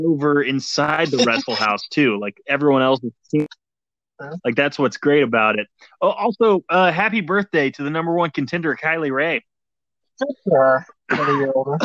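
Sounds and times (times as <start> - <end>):
speech: 0.0 - 3.6, 4.2 - 9.5, 10.2 - 11.8
laughter: 0.2 - 3.0, 4.5 - 7.7, 11.1 - 11.8
throat clearing: 0.6 - 2.4, 11.1 - 11.8.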